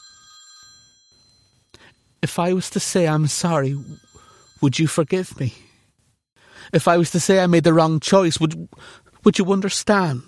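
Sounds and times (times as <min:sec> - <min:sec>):
telephone ringing with an electronic trill: 0:00.0 - 0:01.7, 0:03.3 - 0:05.2
speech: 0:02.2 - 0:05.7, 0:06.7 - 0:10.2.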